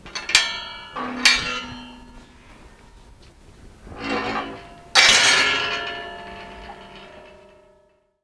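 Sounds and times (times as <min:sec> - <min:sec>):
heavy metal gate: 0:00.0 - 0:03.0, 0:03.7 - 0:08.1.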